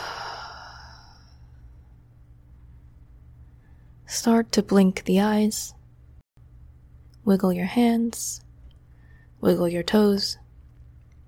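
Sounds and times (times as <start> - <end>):
long soft airy breath during a guided relaxation exercise: 0.0 - 1.6
speech: 4.1 - 5.8, 7.2 - 8.4, 9.4 - 10.4.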